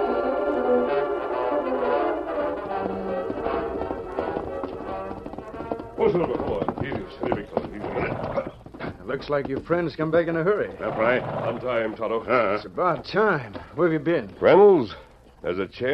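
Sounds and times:
steady tonal background: 0.0s - 8.5s
horse hooves galloping: 0.0s - 15.9s
speech: 6.0s - 6.5s, 9.2s - 15.9s.

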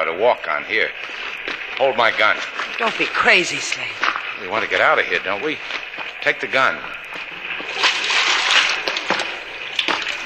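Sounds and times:
speech: 0.1s - 7.0s
sharper splashes in shallow river water: 0.9s - 10.2s
shallow underground river water sloshing: 7.3s - 10.2s.

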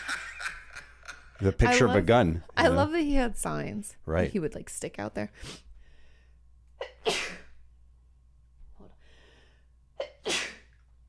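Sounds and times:
speech: 1.4s - 5.6s
loud sneezes: 6.8s - 7.5s, 10.0s - 10.7s.

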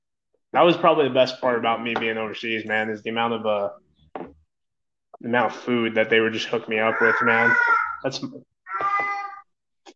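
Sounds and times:
speech: 0.5s - 4.4s, 5.2s - 8.5s
cat meowing: 6.9s - 8.0s, 8.7s - 9.5s.

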